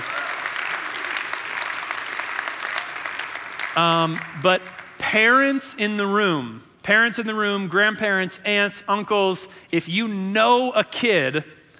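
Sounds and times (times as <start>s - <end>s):
room full of people applauding: 0.0s - 5.0s
speech: 3.8s - 11.6s.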